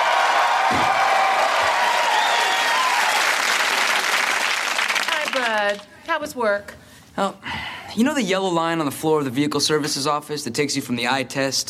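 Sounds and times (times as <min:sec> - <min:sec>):
faint cheering: 0:00.0 - 0:04.2
studio audience applause: 0:00.0 - 0:05.9
speech: 0:05.7 - 0:11.6.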